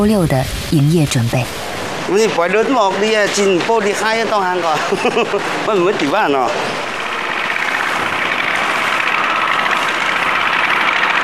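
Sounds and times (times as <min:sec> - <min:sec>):
speech: 0:00.0 - 0:06.9
laughter: 0:04.5 - 0:06.2
small motorbike engine arriving at a market: 0:06.8 - 0:11.2.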